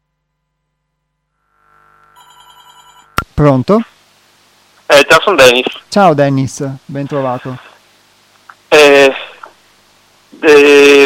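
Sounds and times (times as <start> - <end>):
telephone ringing with electronic warbling multi-tone ring: 2.1 - 3.2
speech: 3.4 - 3.9, 5.0 - 7.7, 10.4 - 11.0.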